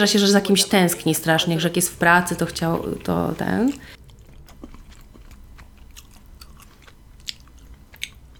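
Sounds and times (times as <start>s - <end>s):
speech: 0.0s - 4.0s
woman chewing and eating pasta: 1.9s - 8.3s.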